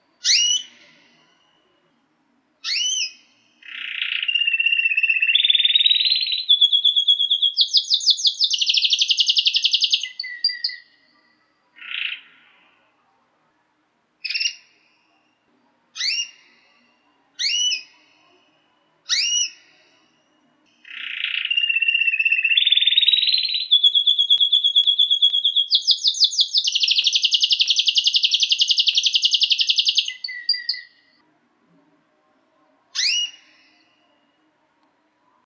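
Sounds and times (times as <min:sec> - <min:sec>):
Dutch Frill canary singing: 0:00.2 - 0:01.8, 0:02.6 - 0:12.4, 0:14.2 - 0:15.3, 0:16.0 - 0:18.3, 0:19.1 - 0:31.2, 0:32.9 - 0:34.4.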